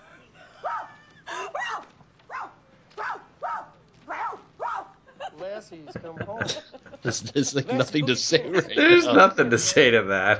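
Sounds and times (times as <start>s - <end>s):
laughter: 0.0s - 1.9s, 5.0s - 10.3s
woman barking like a dog: 0.6s - 5.0s
speech: 5.6s - 10.3s.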